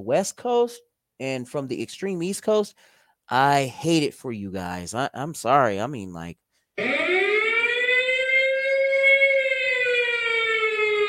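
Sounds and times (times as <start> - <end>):
speech: 0.0 - 7.0
alarm siren wailing: 6.8 - 11.0.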